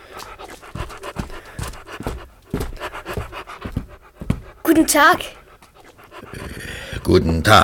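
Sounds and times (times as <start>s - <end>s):
soft scuffling: 0.0s - 5.9s
dog panting: 0.0s - 7.6s
speech: 4.8s - 5.4s, 7.1s - 7.6s.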